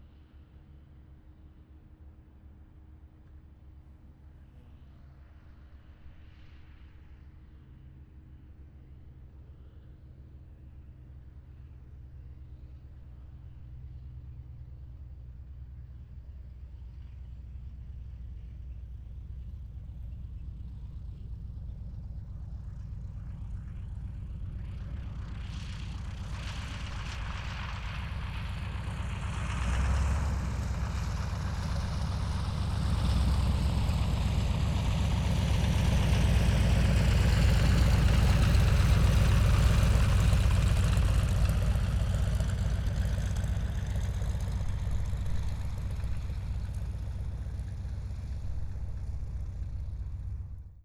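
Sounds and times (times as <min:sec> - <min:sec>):
aircraft landing: 0:20.7 - 0:50.7.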